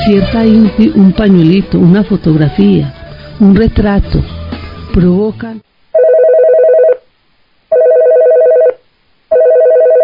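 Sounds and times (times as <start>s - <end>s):
speech: 0.1s - 4.4s, 5.0s - 5.8s
telephone ringing with an incoming call, warbling electronic tone: 6.0s - 7.1s, 7.7s - 10.0s.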